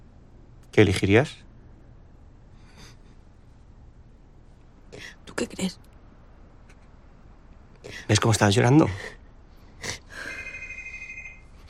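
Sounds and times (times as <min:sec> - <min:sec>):
speech: 0:00.8 - 0:01.4, 0:05.4 - 0:05.9, 0:07.8 - 0:09.2
mobile phone ringing: 0:10.3 - 0:11.6.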